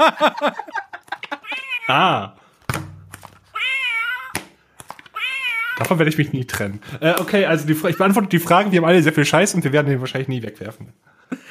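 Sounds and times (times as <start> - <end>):
speech: 0.0 - 0.8, 1.9 - 2.4, 5.9 - 11.0
laughter: 0.0 - 2.1
toy cat sound box electronic meows: 3.5 - 4.4, 5.1 - 5.8.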